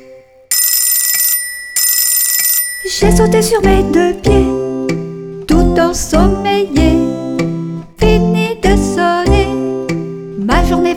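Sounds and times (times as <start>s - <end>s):
alarm clock ringing with a rattling metallic clang: 0.0s - 3.4s
soft tones: 0.0s - 10.9s
speech: 2.8s - 4.6s, 5.8s - 7.1s.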